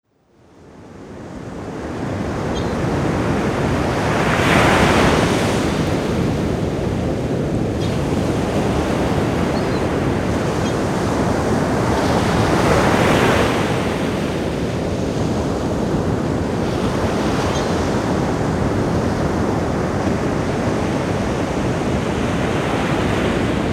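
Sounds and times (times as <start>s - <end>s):
ocean waves on a beach: 0.4s - 23.7s
seagulls calling: 2.4s - 3.0s, 9.4s - 10.9s.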